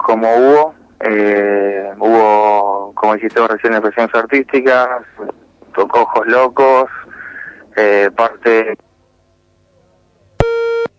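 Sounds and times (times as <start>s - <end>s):
speech: 0.1s - 2.3s, 3.0s - 7.0s, 7.8s - 8.9s
telephone busy tone after a dropped call: 10.4s - 10.9s.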